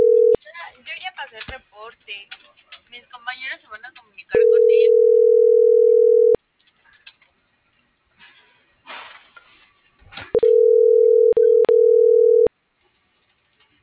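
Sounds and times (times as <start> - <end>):
steady telephone tone while a number is dialed: 0.0 - 0.4, 4.4 - 6.4, 10.4 - 12.5.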